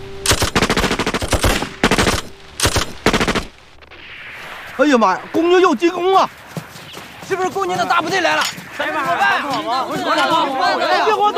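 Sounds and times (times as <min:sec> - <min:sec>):
rapid automatic gunfire in a staged battle scene: 0:00.3 - 0:03.5
speech: 0:04.8 - 0:06.4, 0:07.3 - 0:11.3.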